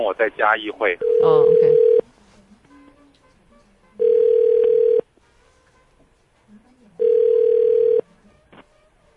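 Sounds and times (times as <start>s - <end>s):
speech: 0.0s - 1.9s
telephone ringback tone on an outgoing call: 1.0s - 2.0s, 4.0s - 5.0s, 7.0s - 8.0s.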